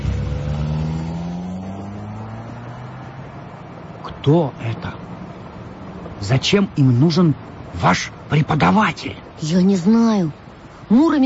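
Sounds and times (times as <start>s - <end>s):
car engine revving as the car drives away: 0.0s - 5.6s
speech: 4.2s - 5.0s, 6.2s - 11.2s.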